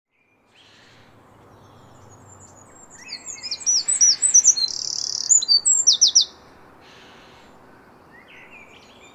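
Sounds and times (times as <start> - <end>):
Eurasian wren Troglodytes troglodytes song: 0.3 - 9.1.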